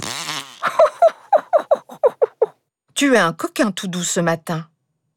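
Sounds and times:
comical fart noises: 0.0 - 0.7
speech: 3.0 - 4.7.

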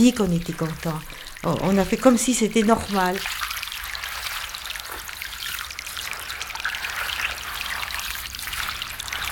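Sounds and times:
steady rain falling: 0.0 - 3.4, 7.5 - 9.3
speech: 0.0 - 3.5.

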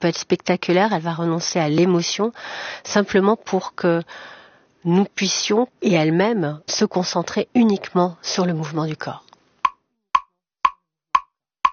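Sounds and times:
speech: 0.0 - 9.2
metronome ticking: 9.6 - 11.7.

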